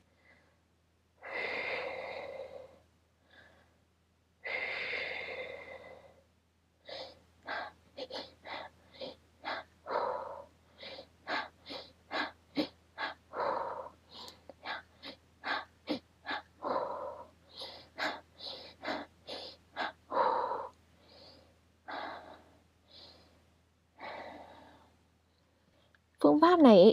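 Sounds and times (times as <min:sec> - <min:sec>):
person breathing audibly in a breathing technique, quick inhales then slow exhale: 0:00.0 - 0:26.1.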